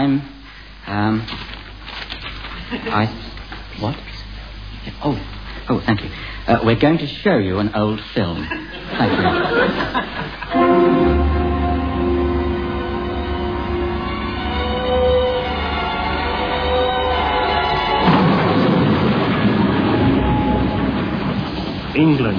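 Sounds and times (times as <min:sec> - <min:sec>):
speech: 0:00.0 - 0:01.6, 0:02.7 - 0:04.1, 0:05.0 - 0:11.1, 0:22.0 - 0:22.3
laughter: 0:02.5 - 0:03.2, 0:08.4 - 0:10.6
steam train chugging at night: 0:08.7 - 0:22.3.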